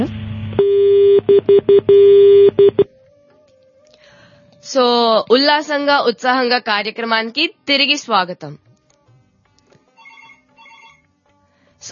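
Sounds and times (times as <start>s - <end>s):
telephone busy tone after a caller's line is disconnected: 0.6s - 2.9s
speech: 4.7s - 8.7s.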